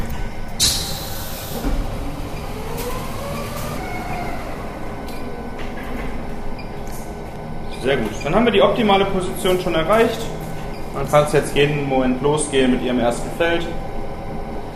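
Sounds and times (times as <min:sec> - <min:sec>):
rising and falling motor whine of X-ray imaging units: 0:00.0 - 0:07.7
heavy X-ray imaging units moving back into place: 0:00.0 - 0:11.9
steady mechanical rumble of X-ray imaging units: 0:00.0 - 0:13.2
speech: 0:07.8 - 0:10.4, 0:11.0 - 0:13.9.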